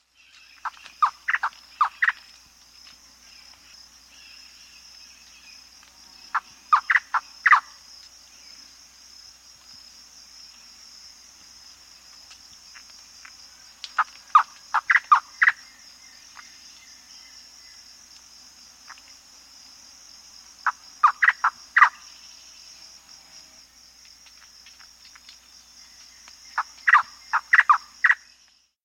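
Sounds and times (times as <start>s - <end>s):
Manu Antbird calling: 0.1s - 2.4s, 3.2s - 8.7s, 14.0s - 17.8s, 20.6s - 22.5s, 25.8s - 28.3s.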